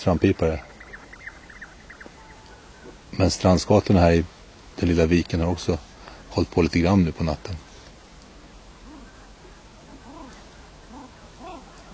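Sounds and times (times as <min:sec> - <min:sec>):
speech: 0:00.0 - 0:00.7, 0:03.2 - 0:07.7
male common shelducks giving soft whistled calls: 0:00.0 - 0:03.0, 0:08.8 - 0:11.9
steady hiss of noise: 0:00.0 - 0:11.9.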